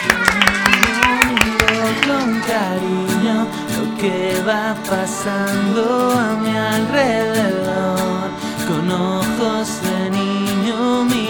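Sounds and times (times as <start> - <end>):
audience clapping for the artists: 0.0 - 2.6
sustained voices: 0.0 - 11.2
speech: 4.0 - 8.1.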